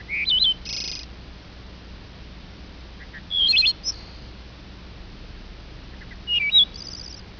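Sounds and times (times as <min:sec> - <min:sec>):
bird chirping: 0:00.0 - 0:01.1, 0:03.0 - 0:04.3, 0:05.9 - 0:07.2
low rumbling background noise: 0:00.0 - 0:07.3.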